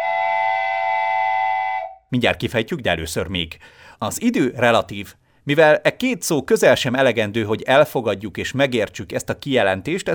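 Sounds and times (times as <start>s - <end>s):
multi-toned train whistle: 0.0s - 2.1s
speech: 2.1s - 10.1s.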